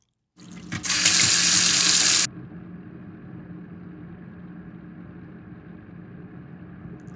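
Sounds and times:
water gushing from a kitchen faucet into a sink: 0.4s - 2.3s
faint low hum: 2.3s - 7.1s.

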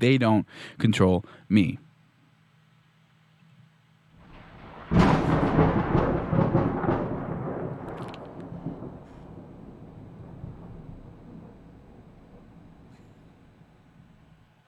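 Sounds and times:
speech: 0.0s - 1.8s
loud thunder crash from a lightning strike: 4.2s - 14.4s.

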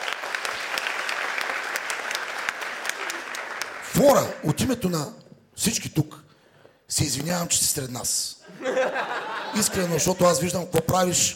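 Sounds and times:
audience applause at a comedy roast: 0.0s - 4.4s
speech: 4.0s - 6.2s, 6.9s - 11.3s
laughter: 8.4s - 10.6s.

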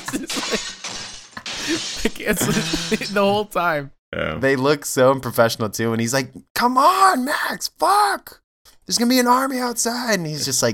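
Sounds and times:
tinkling glass debris: 0.0s - 3.4s
glass display cases being smashed: 0.0s - 3.6s
speech: 0.1s - 1.0s, 1.6s - 10.7s.

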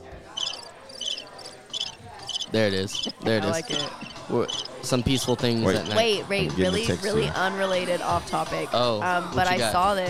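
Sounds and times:
crickets chirping: 0.3s - 5.0s
speech: 2.5s - 10.0s.

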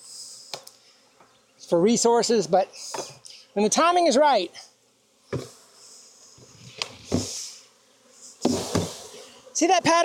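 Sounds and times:
honeybees buzzing at an open long Langstroth hive: 0.0s - 10.0s
speech: 1.7s - 4.7s, 9.6s - 10.0s
dull knocks and bumps at a beehive: 8.4s - 9.0s.

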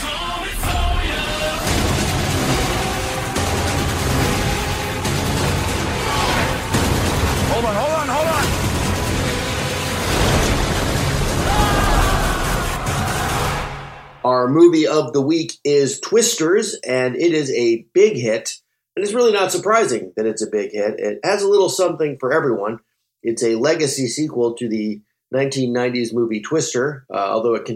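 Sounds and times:
loud fireworks bursting and booming: 0.0s - 14.2s
speech: 14.5s - 27.7s.

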